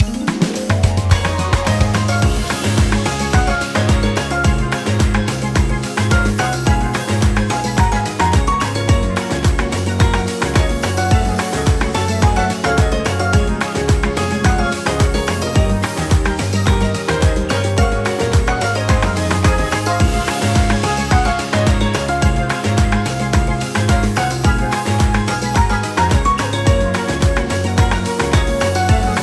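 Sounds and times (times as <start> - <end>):
background music: 0.0 - 29.2.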